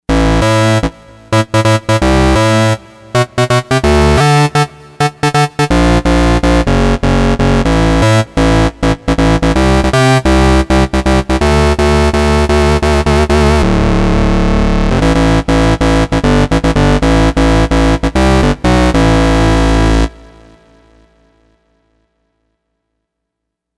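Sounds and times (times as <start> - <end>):
Oak Bass synthesizer bass on Novation UltraNova: 0.1 - 20.9.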